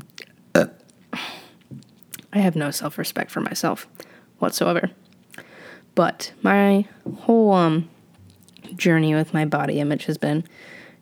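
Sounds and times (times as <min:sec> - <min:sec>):
person burping: 0:00.6 - 0:01.4
speech: 0:02.4 - 0:05.0, 0:06.0 - 0:07.9, 0:08.8 - 0:10.8.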